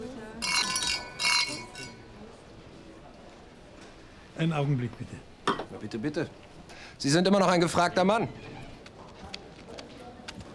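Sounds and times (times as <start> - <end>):
faint voices murmuring: 0.0 - 10.5
glasses clinking in a toast: 0.4 - 2.1
speech: 4.4 - 8.5.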